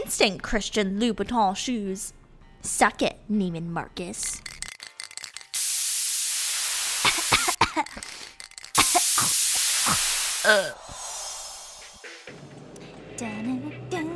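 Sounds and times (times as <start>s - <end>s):
speech: 0.1s - 4.5s, 7.8s - 8.2s, 9.9s - 11.0s, 13.2s - 13.8s
red aerosol spray paint from a dollar-store can hissing: 5.6s - 7.6s, 8.8s - 12.3s
short vocal sounds: 10.4s - 12.0s.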